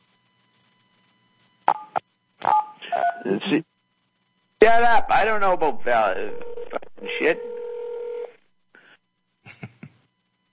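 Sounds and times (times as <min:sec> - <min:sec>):
speech: 0:03.2 - 0:03.7, 0:04.6 - 0:07.5
buzzy phone line ringing: 0:06.3 - 0:08.3
telephone dial tone: 0:07.4 - 0:08.3.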